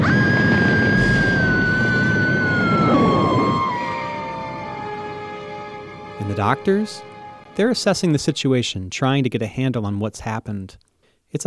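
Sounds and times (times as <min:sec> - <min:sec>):
emergency siren wailing in a staged disaster simulation: 0:00.0 - 0:07.5
dense noise: 0:00.0 - 0:11.4
speech: 0:06.4 - 0:11.4.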